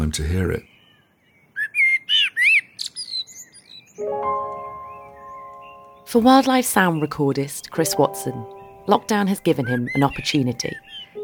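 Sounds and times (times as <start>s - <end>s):
speech: 0.1s - 0.7s, 6.1s - 10.9s
blackbird singing fluty warbling phrases: 0.6s - 4.1s, 4.8s - 11.2s
steady harmonic tone: 4.0s - 11.2s.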